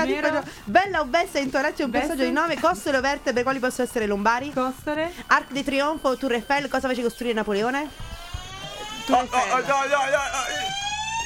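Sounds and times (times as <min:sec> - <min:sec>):
speech: 0:00.0 - 0:08.1, 0:09.1 - 0:10.8
electronic quiz-show time-up siren with buzzy rising tone: 0:07.4 - 0:11.2.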